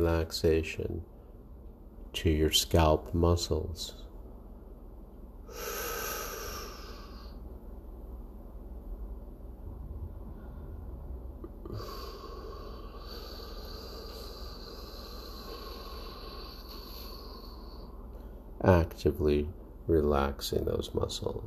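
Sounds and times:
speech: 0.0 - 1.1, 2.1 - 4.0, 5.5 - 5.9, 18.6 - 21.4
deep breathing in and out during a guided relaxation exercise: 5.4 - 7.6, 9.9 - 18.6.

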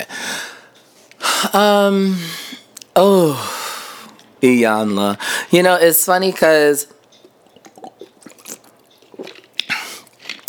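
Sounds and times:
speech: 1.4 - 2.4, 3.0 - 3.5, 4.4 - 7.0
swallowing: 7.2 - 10.4
person sipping water: 7.3 - 10.4.

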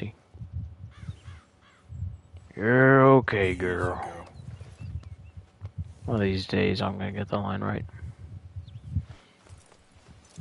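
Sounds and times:
speech: 0.0 - 0.2, 2.6 - 4.1, 6.1 - 8.0
horse hooves clip-clopping at a walk: 9.4 - 10.3.

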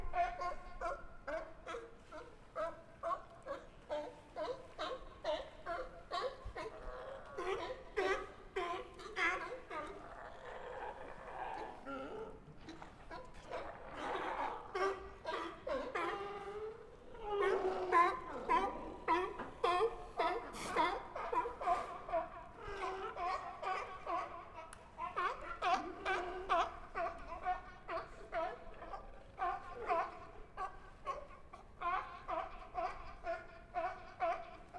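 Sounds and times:
sea lions barking and roaring while fighting for space on floating docks: 0.0 - 34.7.

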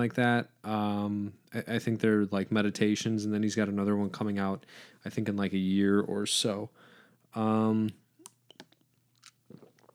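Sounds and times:
speech: 0.0 - 8.0
person sipping water: 8.2 - 9.9
person gulping: 8.5 - 9.9.

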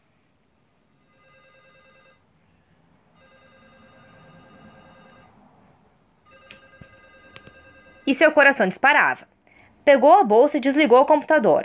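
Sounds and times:
phone ringing in bright harmonic tones: 1.0 - 2.3, 3.1 - 5.4, 6.2 - 8.7
speech: 8.1 - 11.6.

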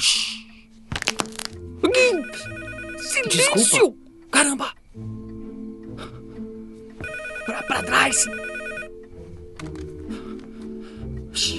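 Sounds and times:
telephone bell ringing during a party: 2.1 - 3.5, 7.0 - 9.0
speech: 3.3 - 5.2, 7.6 - 8.6, 11.4 - 11.5.

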